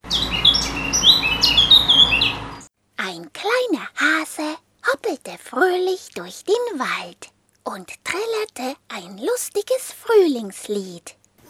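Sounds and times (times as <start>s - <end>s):
birds chirping and squawking: 0.0s - 2.7s
steady hiss: 0.0s - 11.4s
speech: 5.8s - 11.2s.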